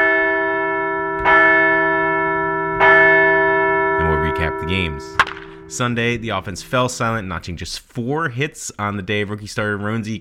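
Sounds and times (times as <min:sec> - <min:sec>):
large bell clanging: 0:00.0 - 0:07.8
speech: 0:04.7 - 0:10.1.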